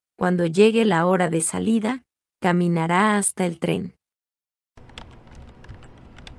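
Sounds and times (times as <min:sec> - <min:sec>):
speech: 0:00.2 - 0:04.0
keyboard typing: 0:04.8 - 0:06.3.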